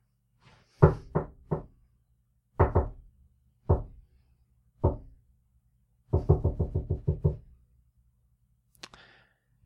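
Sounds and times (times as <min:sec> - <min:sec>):
crisp knocking on a door: 0:00.8 - 0:01.8, 0:02.6 - 0:04.0, 0:04.8 - 0:05.2, 0:06.1 - 0:07.5.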